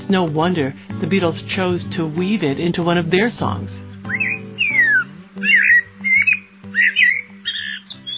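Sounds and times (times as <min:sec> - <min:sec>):
speech: 0:00.1 - 0:03.8
Eurasian blackbird singing fluty warbling phrases: 0:03.7 - 0:08.1.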